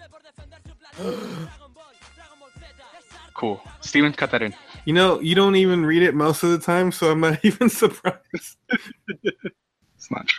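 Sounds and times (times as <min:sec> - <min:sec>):
group of people gasping: 0:01.0 - 0:01.5
speech: 0:01.0 - 0:01.6, 0:03.4 - 0:10.3
laughter: 0:05.2 - 0:09.5.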